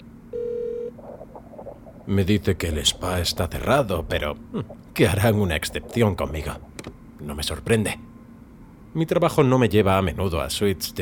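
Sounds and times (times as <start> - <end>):
telephone handset electronic tone: 0.3 - 1.0
speech: 2.1 - 8.0, 9.0 - 11.0.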